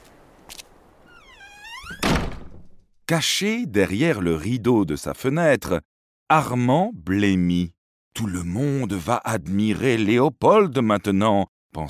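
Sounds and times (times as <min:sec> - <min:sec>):
door hinge creaking: 0:01.0 - 0:02.9
speech: 0:03.1 - 0:11.8.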